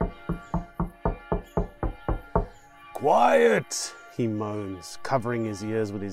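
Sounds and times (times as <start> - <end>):
firm knocking on a door: 0.0 - 2.6
speech: 3.0 - 6.1.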